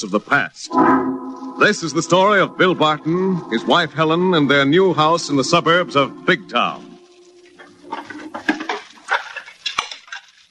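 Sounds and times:
speech: 0.0s - 6.9s
dishes clattering while being washed: 7.4s - 10.4s.

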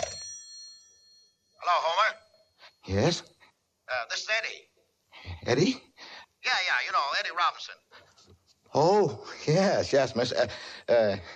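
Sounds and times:
telephone bell ringing: 0.0s - 3.1s
speech: 2.9s - 3.4s, 4.0s - 11.3s.

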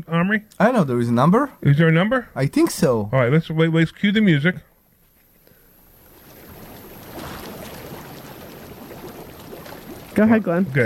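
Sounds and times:
speech: 0.0s - 4.7s, 10.2s - 10.8s
jacuzzi water running: 5.3s - 10.8s.

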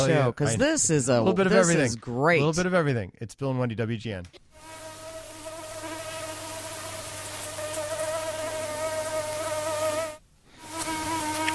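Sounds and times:
speech: 0.0s - 4.8s
mosquito buzzing: 4.5s - 11.5s.

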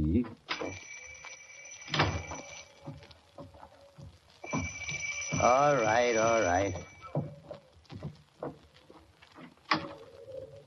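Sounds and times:
doorbell ringing: 0.5s - 3.0s, 4.4s - 7.2s
knocks and shuffling thuds: 1.8s - 10.1s
speech: 5.4s - 6.9s.

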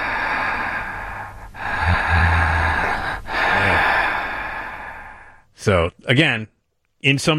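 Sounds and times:
man breathing heavily: 0.0s - 5.5s
speech: 5.6s - 7.3s.

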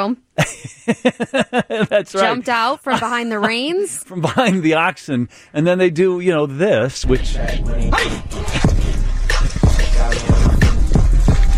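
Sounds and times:
speech: 0.0s - 8.7s
laughter: 0.4s - 4.9s
churning water: 8.0s - 11.5s.

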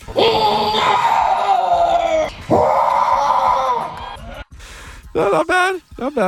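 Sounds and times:
contestant screaming into a microphone imitating a Sasquatch call on stage: 0.1s - 4.4s.

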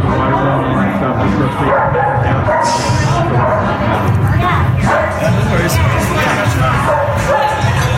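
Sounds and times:
diners talking in a crowded restaurant: 0.0s - 7.9s
large dog barking in a restaurant: 1.6s - 3.8s, 4.8s - 5.3s, 6.8s - 7.9s.

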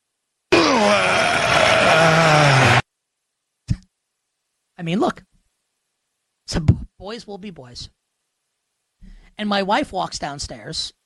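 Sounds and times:
person groaning imitating exertion on a Peloton exercise bike: 0.5s - 2.8s
speech: 4.8s - 5.3s, 6.5s - 8.0s, 9.4s - 11.0s.

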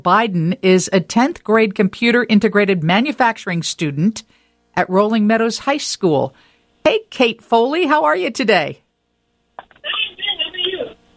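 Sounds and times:
speech: 0.0s - 8.8s
distant voice over telephone line on speakerphone: 9.6s - 11.0s.

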